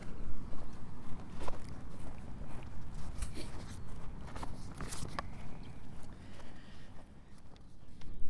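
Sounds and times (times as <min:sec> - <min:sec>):
footsteps walking through grass on grassy slopes: 0:00.0 - 0:08.2.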